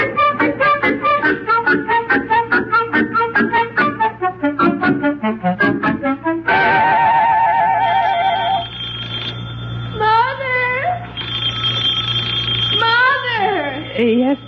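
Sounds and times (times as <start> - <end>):
steady low hum: 0.0 - 14.4
gliding whinny-like tones: 6.6 - 14.4
telephone ringing with a warbling electronic tone: 7.7 - 14.4.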